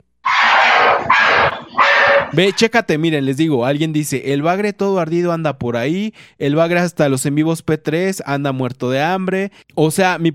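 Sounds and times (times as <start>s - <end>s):
several dogs barking and yelping: 0.3s - 2.6s
speech: 2.3s - 10.3s.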